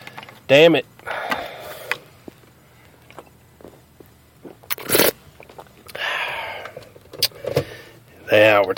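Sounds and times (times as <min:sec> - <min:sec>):
speech: 0:00.5 - 0:00.9
crunchy mouth sounds: 0:01.2 - 0:07.4
person slurping sweet tea: 0:04.7 - 0:05.2.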